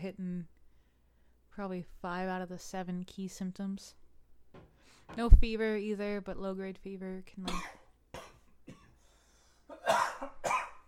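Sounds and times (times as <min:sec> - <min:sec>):
speech: 0:00.0 - 0:00.6, 0:01.6 - 0:04.0, 0:04.6 - 0:07.8
person coughing: 0:07.4 - 0:09.0, 0:09.7 - 0:10.8.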